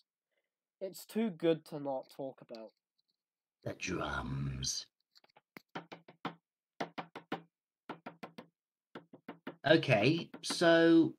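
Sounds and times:
speech: 0:00.8 - 0:02.8, 0:03.6 - 0:04.9, 0:09.6 - 0:11.1
rhythmic knocking on a hard surface: 0:05.6 - 0:11.0.

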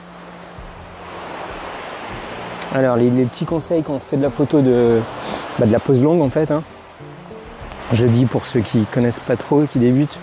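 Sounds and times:
rushing water roar like a waterfall: 0:00.0 - 0:10.2
speech: 0:02.7 - 0:06.7, 0:07.9 - 0:10.2.

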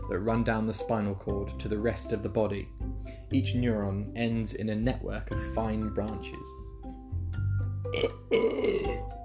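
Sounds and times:
speech: 0:00.1 - 0:06.6, 0:07.9 - 0:08.9
loud deliberate burp: 0:07.9 - 0:09.1.

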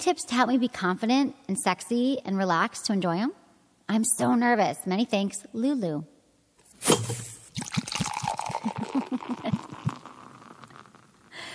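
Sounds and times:
speech: 0:00.0 - 0:06.1, 0:06.8 - 0:07.3
beer pouring with a fizzing splash: 0:06.8 - 0:11.5
quick rhythmic gulping of beer: 0:07.6 - 0:10.9.

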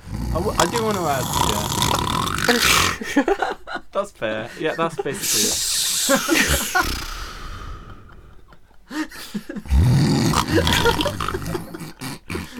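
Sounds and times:
person imitating their own snoring with their voice: 0:00.0 - 0:03.0, 0:05.2 - 0:08.4, 0:09.6 - 0:12.5
speech: 0:00.4 - 0:07.0, 0:10.6 - 0:11.6
laughter: 0:02.8 - 0:09.8, 0:10.4 - 0:12.5.

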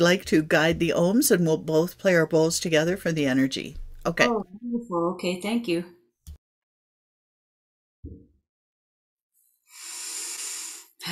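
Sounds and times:
speech: 0:00.0 - 0:06.0
soft low thump: 0:03.7 - 0:04.0
deep breathing in a guided group breathing session: 0:09.7 - 0:11.0.

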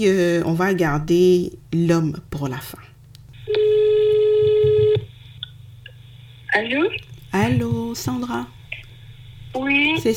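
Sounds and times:
speech: 0:00.0 - 0:02.9, 0:06.5 - 0:08.6, 0:09.5 - 0:10.1
buzzy electronic telephone tone of a call being placed: 0:03.4 - 0:05.1.

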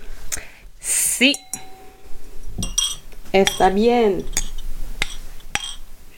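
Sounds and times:
speech: 0:01.2 - 0:01.5, 0:03.3 - 0:04.4
glasses clinking together in a toast: 0:01.3 - 0:05.8.

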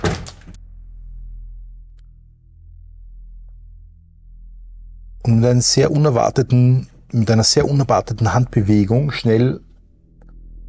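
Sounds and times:
heavy door slamming shut: 0:00.0 - 0:00.6
low steady rumble: 0:00.5 - 0:10.6
speech: 0:05.3 - 0:09.7.

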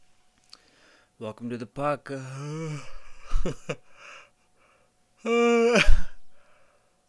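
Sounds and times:
speech: 0:01.2 - 0:04.2, 0:05.2 - 0:06.0
person yawning: 0:02.2 - 0:03.5, 0:05.2 - 0:06.4.

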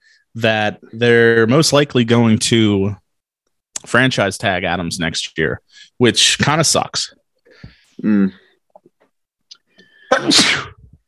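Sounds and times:
speech: 0:00.3 - 0:03.0, 0:03.8 - 0:08.4, 0:10.1 - 0:10.7
sneeze: 0:10.1 - 0:10.9.

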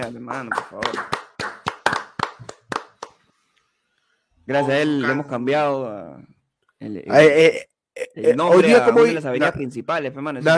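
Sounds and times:
speech: 0:00.0 - 0:01.2, 0:04.5 - 0:10.5
hands clapping: 0:00.0 - 0:03.3.

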